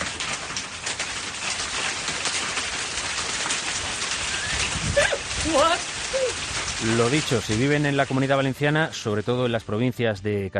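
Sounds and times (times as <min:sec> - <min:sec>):
large hailstones falling in Alcoy, Valencian Community: 0:00.0 - 0:10.2
speech: 0:05.5 - 0:10.5.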